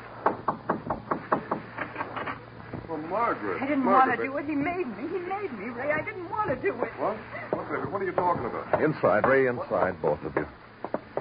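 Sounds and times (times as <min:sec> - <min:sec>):
rapid knocking on a door: 0:00.2 - 0:01.7, 0:05.8 - 0:06.8, 0:07.5 - 0:11.2
speech: 0:03.1 - 0:10.6.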